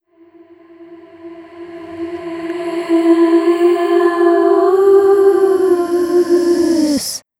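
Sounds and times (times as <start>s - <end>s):
vocal riser: 2.5s - 7.2s.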